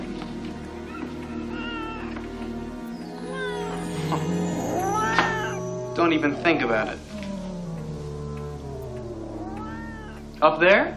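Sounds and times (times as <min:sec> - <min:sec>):
low drone: 0:00.0 - 0:10.9
cat meowing: 0:00.9 - 0:02.2, 0:04.6 - 0:05.6, 0:06.3 - 0:10.4
speech: 0:06.0 - 0:07.0, 0:10.4 - 0:10.9.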